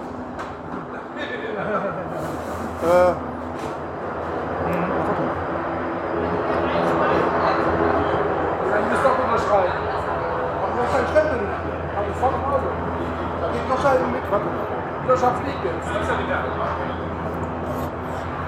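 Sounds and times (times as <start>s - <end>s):
laughter: 0.8s - 3.2s
helicopter flying overhead with dense engine roar: 1.6s - 18.4s
faint voices talking: 4.5s - 18.4s.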